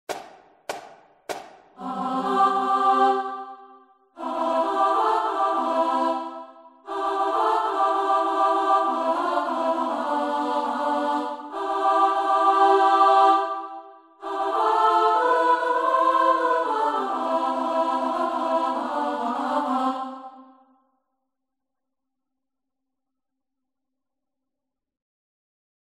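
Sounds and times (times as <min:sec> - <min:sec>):
chorus singing all together: 0:01.7 - 0:20.7.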